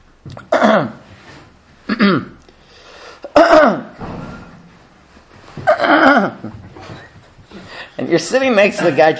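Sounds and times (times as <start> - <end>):
speech: 0.2 - 1.0, 1.9 - 2.4, 3.4 - 4.1, 5.8 - 6.6, 8.0 - 9.1
person imitating a man's throat clearing and coughing during prayer in a synagogue: 0.4 - 1.0, 1.9 - 2.4, 3.2 - 4.0, 5.7 - 6.5.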